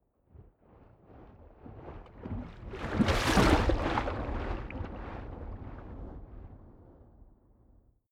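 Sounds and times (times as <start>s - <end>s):
waves splashing: 2.9s - 4.9s.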